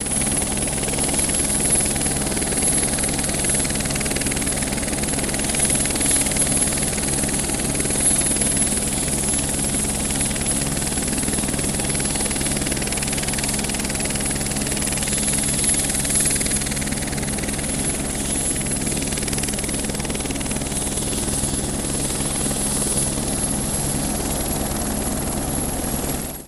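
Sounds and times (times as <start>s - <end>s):
helicopter in flight: 0.0s - 26.4s.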